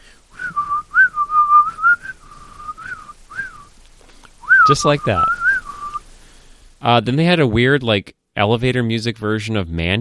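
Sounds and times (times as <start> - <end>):
person whistling a rap song melody: 0.3 - 3.7, 4.4 - 6.0
speech: 4.7 - 5.4, 6.8 - 9.9.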